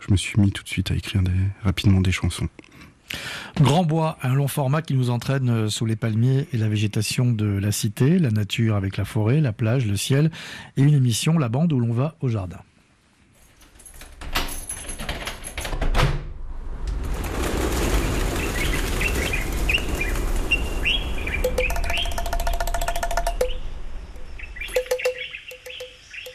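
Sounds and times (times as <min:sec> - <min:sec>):
speech: 0:00.1 - 0:12.7
steady rushing wash of noise: 0:16.5 - 0:25.0
birds chirping and singing: 0:18.2 - 0:26.3
dry rhythmic clicks and taps: 0:21.0 - 0:26.3.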